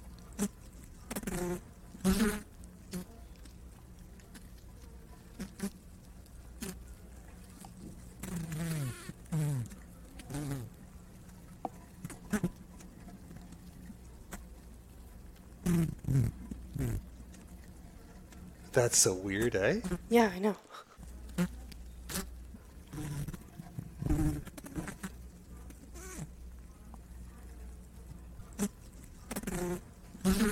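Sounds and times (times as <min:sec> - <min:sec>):
honeybee buzzing: 0:00.3 - 0:03.3, 0:04.2 - 0:05.8, 0:08.1 - 0:10.8, 0:15.6 - 0:20.3, 0:21.0 - 0:26.4, 0:28.4 - 0:30.5
speech: 0:00.4 - 0:00.6, 0:01.5 - 0:03.0, 0:18.8 - 0:21.5.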